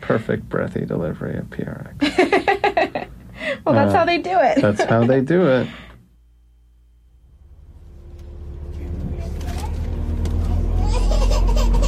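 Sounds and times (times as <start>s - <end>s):
speech: 0.1s - 2.6s, 3.7s - 5.8s
shuttle bus engine rumbling: 7.3s - 11.8s.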